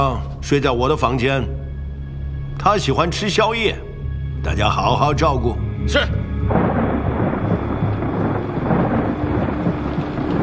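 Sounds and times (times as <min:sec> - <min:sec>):
speech: 0:00.0 - 0:01.6, 0:02.6 - 0:03.8, 0:04.4 - 0:06.6
steady dense rain pouring down: 0:06.2 - 0:10.4
deep rolling rumble of thunder: 0:06.4 - 0:10.4.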